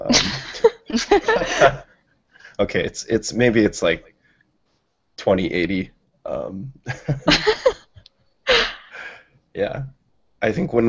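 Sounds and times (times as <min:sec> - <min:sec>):
harsh coughing: 0:00.0 - 0:01.9
laughter: 0:00.0 - 0:01.9, 0:06.9 - 0:08.8
speech: 0:00.1 - 0:00.4, 0:01.0 - 0:01.9, 0:02.6 - 0:04.1, 0:05.2 - 0:07.7, 0:09.6 - 0:10.8.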